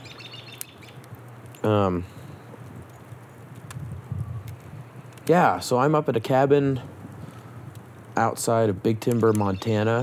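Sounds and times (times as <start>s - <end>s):
loud short bird call: 0.0s - 1.0s, 9.2s - 10.0s
faint bird chirps: 0.0s - 5.2s, 9.0s - 10.0s
steady outdoor wind noise: 0.9s - 10.0s
speech: 1.6s - 2.2s, 5.3s - 6.9s, 8.2s - 10.0s.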